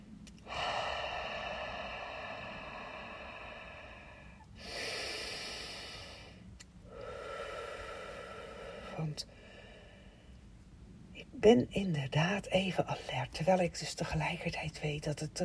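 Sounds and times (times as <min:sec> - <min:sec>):
steady hiss: 0:00.0 - 0:15.4
deep slow breathing in and out: 0:00.4 - 0:10.5
speech: 0:09.0 - 0:09.5, 0:11.3 - 0:15.4.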